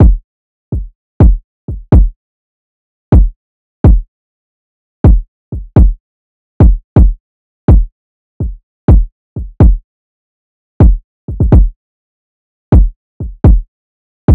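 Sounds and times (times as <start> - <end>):
drum loop kick at 125 BPM: 0.0 - 0.2, 0.8 - 2.1, 3.1 - 4.0, 5.0 - 6.0, 6.6 - 7.9, 8.9 - 9.8, 10.8 - 11.7, 12.7 - 13.6.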